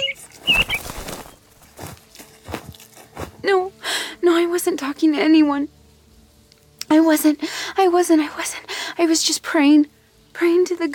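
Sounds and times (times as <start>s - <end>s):
small bird chirping: 0.0s - 1.5s
small bird flapping wings flying away: 0.4s - 1.7s
speech: 3.4s - 3.7s, 4.5s - 5.8s, 6.9s - 10.9s.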